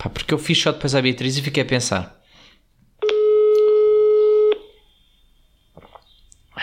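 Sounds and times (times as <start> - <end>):
speech: 0.0 - 2.2
telephone call tone after dialing a number: 3.0 - 4.8.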